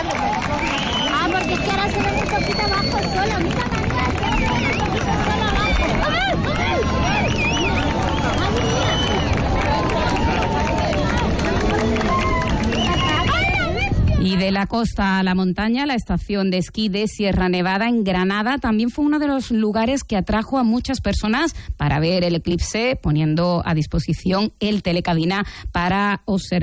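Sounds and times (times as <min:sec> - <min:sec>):
people shouting: 0:00.0 - 0:13.9
crowd on a beach cheering at an eclipse maximum: 0:00.0 - 0:14.0
people whistling: 0:00.3 - 0:05.9, 0:07.0 - 0:09.6, 0:12.3 - 0:13.3
speech: 0:01.4 - 0:05.2, 0:14.3 - 0:26.6.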